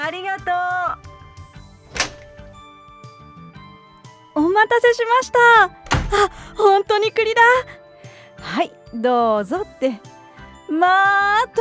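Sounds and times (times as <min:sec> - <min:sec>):
faint steady tonal background: 0:01.1 - 0:11.5
door opening thunk: 0:01.9 - 0:02.5, 0:05.8 - 0:06.4
speech: 0:04.6 - 0:07.8, 0:08.5 - 0:10.1, 0:10.7 - 0:11.5.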